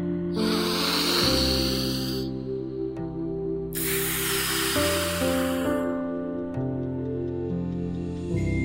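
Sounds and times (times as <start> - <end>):
steady soft music: 0.0 - 8.6
long slow deep breaths: 0.4 - 2.4, 3.8 - 6.0.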